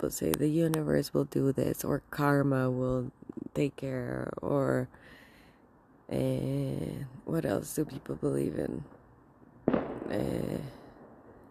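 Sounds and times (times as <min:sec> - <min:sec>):
speech: 0:00.0 - 0:05.2, 0:06.1 - 0:09.0, 0:10.1 - 0:10.8
firework boom with rolling crackle and rumble: 0:09.6 - 0:10.2.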